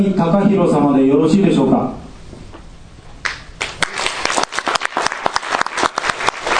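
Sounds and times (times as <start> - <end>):
speech: 0.0 - 2.1
room full of people clapping: 3.2 - 6.5.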